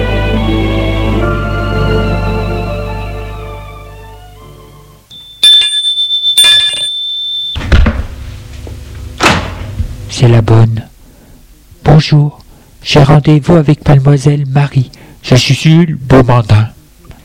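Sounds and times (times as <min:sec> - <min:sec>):
sustained tones: 0:00.0 - 0:05.2
electric doorbell ringing at the parents' house: 0:05.1 - 0:07.6
dull thump: 0:07.6 - 0:08.2, 0:09.2 - 0:10.0
speech: 0:10.2 - 0:10.9, 0:12.0 - 0:16.7.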